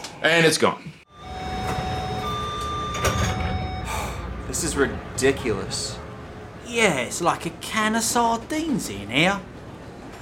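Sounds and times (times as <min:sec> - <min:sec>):
speech: 0:00.2 - 0:01.0, 0:04.5 - 0:06.0, 0:06.7 - 0:09.5
faint electronic tones inside a train carriage: 0:01.1 - 0:04.4
train sliding doors closing with a rumbling whoosh and soft thud: 0:01.1 - 0:06.6
steady hum inside a train carriage: 0:01.1 - 0:10.2.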